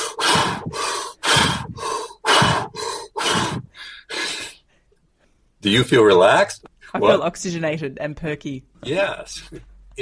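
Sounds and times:
rapid deep breathing: 0:00.0 - 0:05.5
speech: 0:05.6 - 0:10.0.

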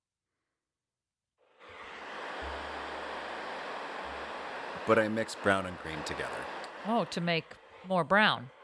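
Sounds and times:
green noise hiss: 0:01.6 - 0:08.6
low hum: 0:01.8 - 0:07.8
speech: 0:04.9 - 0:08.6.

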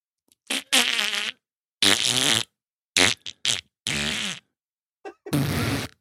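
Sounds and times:
wet buzzing fart noises blown with the lips: 0:00.4 - 0:04.5, 0:05.3 - 0:06.0.

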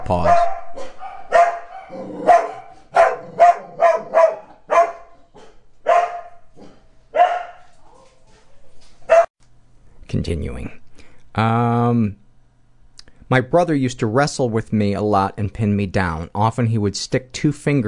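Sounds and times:
dogs barking in sharp loud yaps: 0:00.0 - 0:08.4, 0:09.0 - 0:09.3
speech: 0:00.1 - 0:00.4, 0:10.2 - 0:10.8, 0:11.4 - 0:12.2, 0:13.3 - 0:17.8.

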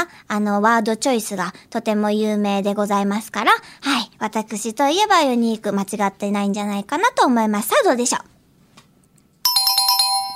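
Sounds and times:
speech: 0:00.0 - 0:08.3
bright electronic quiz show correct-answer chime: 0:09.5 - 0:10.3.

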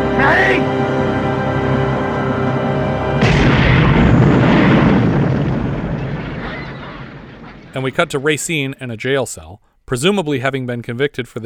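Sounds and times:
music: 0:00.0 - 0:04.4
house explosion blast: 0:03.2 - 0:08.8
sustained roaring broadband rumble: 0:03.2 - 0:08.8
speech: 0:07.8 - 0:11.4.

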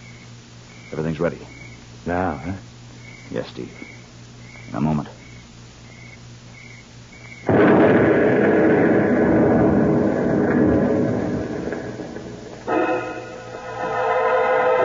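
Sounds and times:
speech: 0:00.9 - 0:02.7, 0:03.3 - 0:04.0, 0:04.7 - 0:05.2
quieter crackling burst: 0:07.2 - 0:14.8
truck carrying explosives blowing up with rumbling roar: 0:07.5 - 0:14.8.

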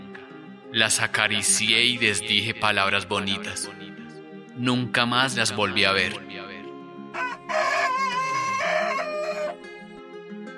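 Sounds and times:
speech: 0:00.7 - 0:04.0, 0:04.6 - 0:06.4
hens clucking and cackling on an intensely cold morning: 0:07.2 - 0:09.6
steady low farmyard hum: 0:07.2 - 0:09.6.

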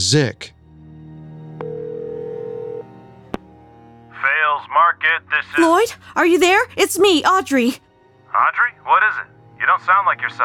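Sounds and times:
speech: 0:00.1 - 0:00.6, 0:04.7 - 0:07.8, 0:08.4 - 0:10.4
telephone line tone while dialing a call: 0:01.6 - 0:02.9.

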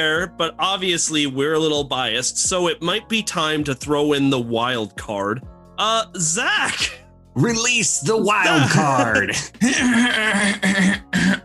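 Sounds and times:
speech: 0:00.0 - 0:11.4
laughter: 0:08.4 - 0:10.6
loud raspy throat clearing: 0:09.3 - 0:11.4.

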